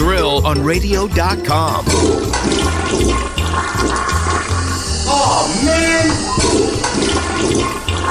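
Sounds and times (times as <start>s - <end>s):
speech: 0.4s - 4.1s, 5.1s - 7.8s
toilet flushing with rushing gurgling water: 1.7s - 8.0s
person exclaiming: 5.1s - 6.2s.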